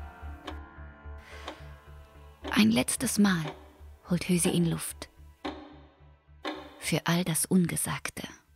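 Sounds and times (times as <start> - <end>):
clock ticking: 1.4 - 1.8, 2.4 - 7.3
speech: 2.6 - 5.1, 6.8 - 8.4.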